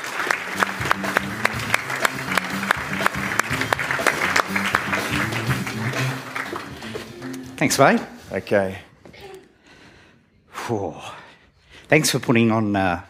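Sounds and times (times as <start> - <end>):
audience clapping to welcome a speaker: 0.0 - 8.1
low music-like tones: 0.0 - 8.8
speech: 7.6 - 8.9, 10.7 - 11.2, 11.9 - 13.0.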